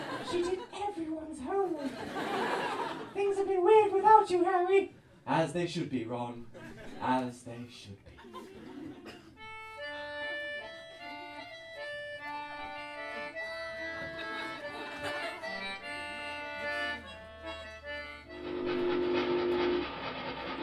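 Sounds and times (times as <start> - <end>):
laughter: 0.0 - 0.9, 1.6 - 3.2, 6.4 - 7.3, 8.0 - 10.6, 13.1 - 18.0
speech: 0.3 - 2.3, 3.2 - 8.5
long steady train whistle: 18.3 - 20.6.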